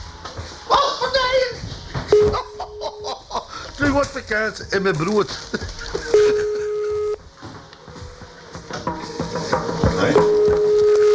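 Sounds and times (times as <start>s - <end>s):
rustling: 0.0s - 11.1s
laughter: 0.6s - 7.2s
telephone ringback beep: 2.1s - 3.2s, 6.0s - 7.2s, 10.2s - 11.1s
speech: 4.0s - 6.4s.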